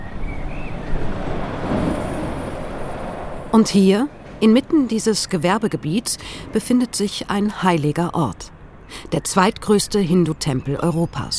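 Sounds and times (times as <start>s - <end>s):
truck rushing past along a street: 0.0s - 4.8s
speech: 3.6s - 11.3s.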